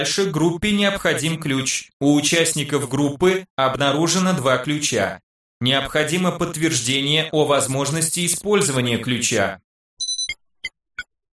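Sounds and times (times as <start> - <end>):
speech: 0.0 - 9.7
game-style system message notification chime: 10.0 - 10.4.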